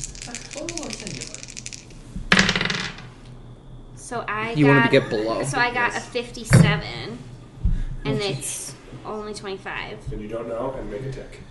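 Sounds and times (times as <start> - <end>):
two plastic percentile dice tumbling across a tabletop: 0.0 - 3.1
speech: 4.1 - 7.3, 8.0 - 11.4.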